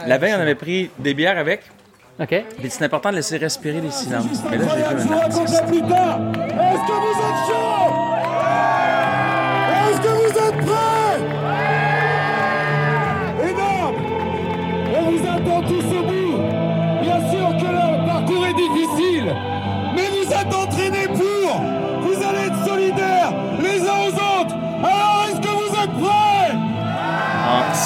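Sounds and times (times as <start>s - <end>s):
speech: 0.0s - 7.6s
large crowd cheering and yelling before a race start: 4.1s - 27.8s.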